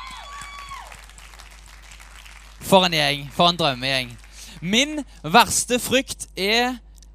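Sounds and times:
crowd applauding: 0.0s - 5.1s
speech: 2.7s - 6.8s.

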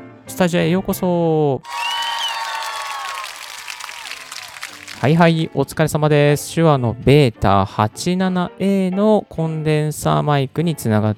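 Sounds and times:
speech: 0.3s - 1.8s, 5.0s - 11.1s
whistles: 1.6s - 3.2s
crowd cheering: 1.6s - 5.2s
applause welcoming a guest: 1.6s - 5.3s.

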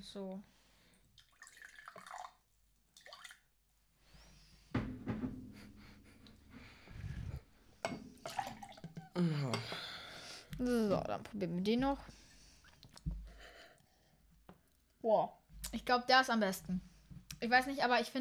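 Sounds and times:
speech: 0.0s - 0.6s, 9.2s - 9.8s, 10.6s - 12.2s, 15.0s - 18.1s
rooibos tea pouring into a cup: 1.1s - 3.5s, 7.0s - 9.6s
crockery clinking: 4.8s - 10.7s.

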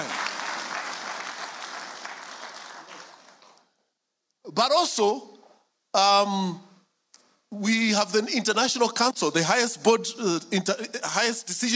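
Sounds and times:
audience clapping: 0.0s - 3.7s
speech: 4.5s - 5.3s, 6.0s - 6.6s, 7.5s - 11.7s.

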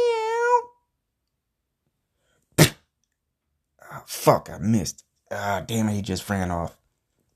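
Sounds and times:
person meowing imitating a cougar: 0.0s - 0.7s
speech: 4.0s - 6.8s.

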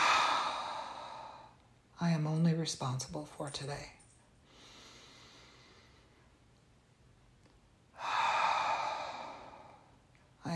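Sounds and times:
long deep breath: 0.0s - 1.6s, 4.4s - 6.3s, 8.0s - 10.0s
speech: 2.0s - 4.0s.

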